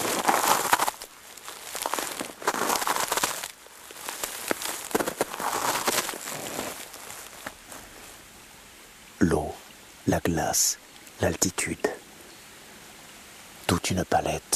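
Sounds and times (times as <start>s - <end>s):
footsteps crunching crusted snow over dry dead leaves: 0.0s - 8.3s
speech: 10.1s - 12.0s, 13.8s - 14.5s.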